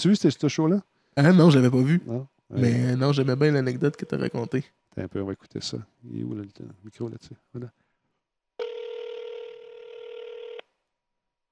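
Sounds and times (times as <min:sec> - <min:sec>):
speech: 0:00.0 - 0:07.8
telephone ringing on an unanswered call: 0:03.8 - 0:04.6, 0:08.6 - 0:10.6.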